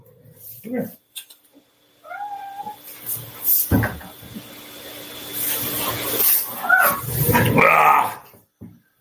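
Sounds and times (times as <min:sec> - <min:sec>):
speech: 0:00.6 - 0:01.3
cat giving a short rising meow: 0:02.0 - 0:02.8, 0:06.6 - 0:08.2.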